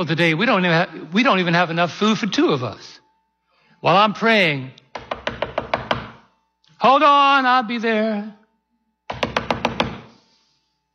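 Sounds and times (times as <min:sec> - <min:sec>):
speech: 0:00.0 - 0:03.0, 0:03.8 - 0:04.8, 0:06.8 - 0:08.4
firm knocks on a door: 0:05.0 - 0:06.2, 0:09.1 - 0:10.1.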